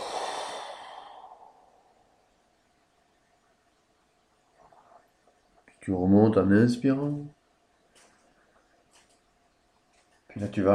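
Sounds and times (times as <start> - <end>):
deep forceful exhale during breathing exercise: 0.0 - 2.0
speech: 5.8 - 7.4, 10.4 - 10.7.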